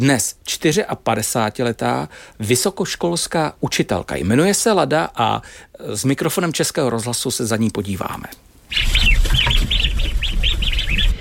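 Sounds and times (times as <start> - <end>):
speech: 0.0 - 9.2
ducks just fed chirping on a farmstead: 8.7 - 11.1.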